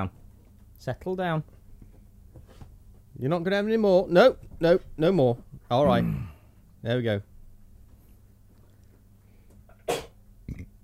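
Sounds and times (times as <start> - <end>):
speech: 0.0 - 0.2, 0.8 - 1.6, 3.2 - 7.3
dog giving a sharp hacking cough: 9.8 - 10.8.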